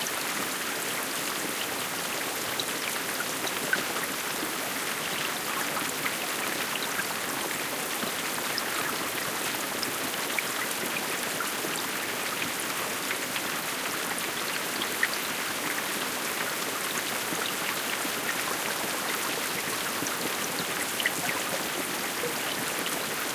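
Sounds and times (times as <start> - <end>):
moderate rain: 0.0 - 23.3.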